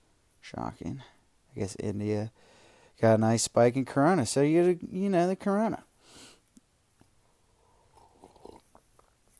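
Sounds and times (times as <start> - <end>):
speech: 0.5 - 6.2
person sipping coffee: 7.6 - 9.3
slurp and swallow of coffee: 7.9 - 9.3
soft mouth clicks: 7.9 - 9.3.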